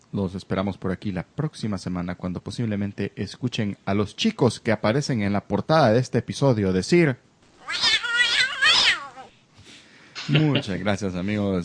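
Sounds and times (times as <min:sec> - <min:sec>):
speech: 0:00.1 - 0:07.9, 0:10.3 - 0:11.6
cat meowing: 0:07.6 - 0:09.3.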